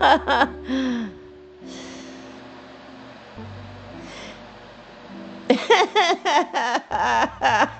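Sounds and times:
rhythmic giggling laughter: 0:00.0 - 0:00.6, 0:05.5 - 0:07.7
person taking deep breaths with gasping inhales: 0:00.6 - 0:02.4.

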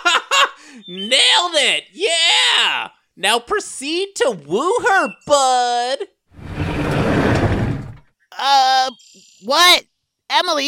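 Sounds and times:
speech: 0:00.8 - 0:06.2, 0:08.3 - 0:10.6
garage door rumbling shut with a grinding mechanical noise: 0:06.4 - 0:08.0.

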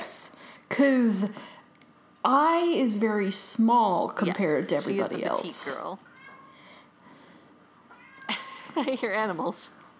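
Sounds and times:
speech: 0:00.7 - 0:01.6, 0:02.2 - 0:06.1, 0:08.8 - 0:09.8
cat meowing: 0:06.1 - 0:06.7, 0:07.9 - 0:08.5.

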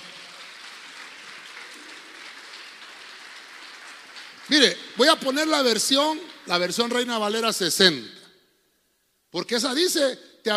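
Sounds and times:
crowd applauding: 0:00.0 - 0:07.1
speech: 0:04.5 - 0:08.2, 0:09.3 - 0:10.5.

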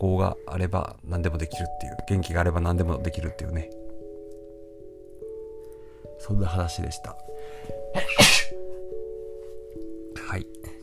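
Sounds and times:
speech: 0:00.0 - 0:03.8, 0:06.2 - 0:08.4, 0:10.3 - 0:10.7
person sneezing from pollen in the air: 0:08.0 - 0:08.6.

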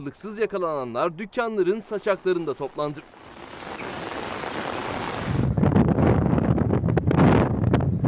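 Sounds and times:
speech: 0:00.0 - 0:03.4
strong storm wind buffeting the microphone: 0:01.9 - 0:08.0.

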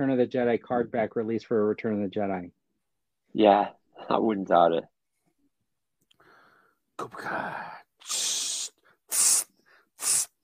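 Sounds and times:
speech: 0:00.0 - 0:02.6, 0:03.3 - 0:04.9, 0:07.0 - 0:08.3
spray hissing: 0:08.1 - 0:10.4.

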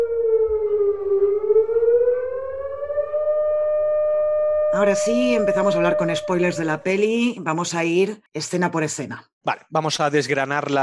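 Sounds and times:
wailing siren with rising and falling pitch: 0:00.0 - 0:07.1
speech: 0:04.8 - 0:10.8.

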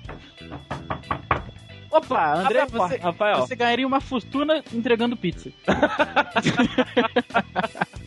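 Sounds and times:
knocking on a door: 0:00.0 - 0:01.7
speech: 0:02.0 - 0:08.0
laughter: 0:05.6 - 0:08.0.

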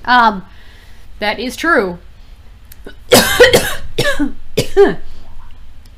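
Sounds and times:
speech: 0:00.0 - 0:02.1, 0:02.8 - 0:05.1
faint hum: 0:00.0 - 0:05.9
person coughing: 0:03.1 - 0:05.1.

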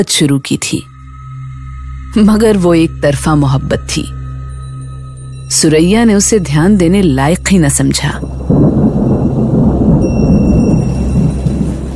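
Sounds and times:
speech: 0:00.0 - 0:00.9, 0:02.1 - 0:04.2, 0:05.5 - 0:08.7
deep continuous rumble of thunder: 0:07.5 - 0:11.9
steady heavy rain: 0:08.2 - 0:11.9.

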